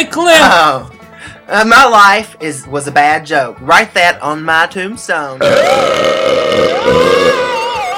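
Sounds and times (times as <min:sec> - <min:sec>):
speech: 0:00.2 - 0:00.9, 0:01.5 - 0:07.4
long loud belch: 0:05.4 - 0:07.8.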